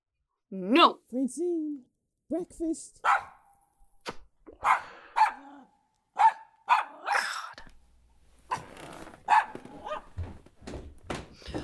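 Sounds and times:
speech: 0:00.5 - 0:03.2
puppy barking and yipping: 0:03.0 - 0:03.4, 0:06.2 - 0:07.2, 0:09.3 - 0:10.1.

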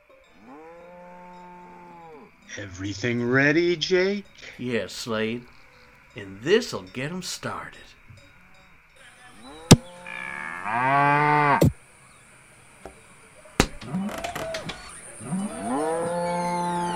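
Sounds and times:
agitated cattle mooing: 0:00.3 - 0:11.7, 0:13.8 - 0:16.9
speech: 0:02.6 - 0:08.0, 0:10.6 - 0:11.2
sharp cracks and knocks: 0:09.7 - 0:09.9, 0:13.6 - 0:15.0.

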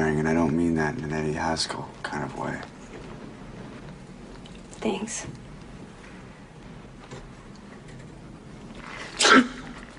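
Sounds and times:
speech: 0:00.2 - 0:02.8, 0:04.8 - 0:05.4
person sneezing: 0:09.1 - 0:09.8.

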